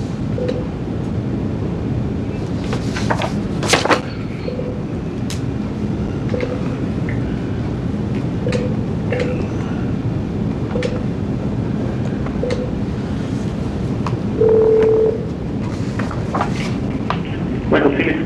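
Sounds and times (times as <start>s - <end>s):
low rumbling noise: 0.0s - 18.2s
telephone dialing tones placing a call: 14.4s - 15.2s.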